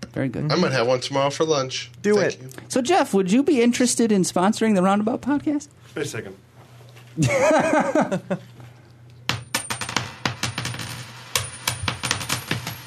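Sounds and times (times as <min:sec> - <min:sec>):
speech: 0:00.2 - 0:06.5, 0:07.2 - 0:08.5
laughter: 0:07.2 - 0:08.5
coins dropping and clinking: 0:09.3 - 0:12.8.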